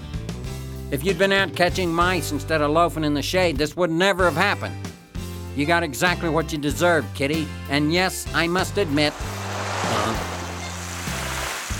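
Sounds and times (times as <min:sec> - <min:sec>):
speech: 0:00.9 - 0:04.8, 0:05.6 - 0:09.4
torrent of water blasting from a fire hose: 0:08.5 - 0:11.7.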